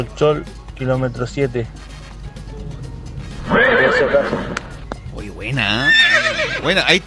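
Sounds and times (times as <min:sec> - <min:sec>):
speech: 0:00.0 - 0:01.9, 0:03.5 - 0:04.6, 0:05.2 - 0:07.0
horse neighing: 0:03.2 - 0:04.9, 0:05.6 - 0:06.8.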